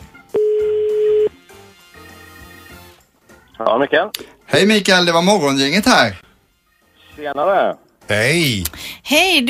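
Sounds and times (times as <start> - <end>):
telephone ringback tone while placing a call: 0.3 - 1.4
speech: 3.6 - 6.2, 7.2 - 9.4.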